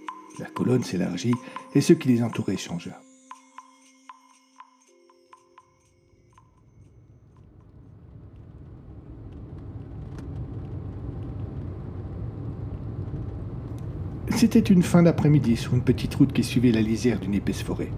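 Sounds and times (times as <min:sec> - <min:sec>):
speech: 0:00.4 - 0:03.1, 0:14.4 - 0:17.9
car driven slowly along a small road beside a forest: 0:07.7 - 0:17.9.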